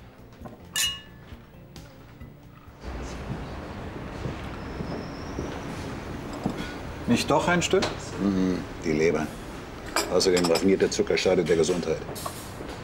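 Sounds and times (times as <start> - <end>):
glasses clinking in a toast: 0.6 - 1.4, 9.9 - 11.0
speech: 7.1 - 9.4, 10.1 - 12.4.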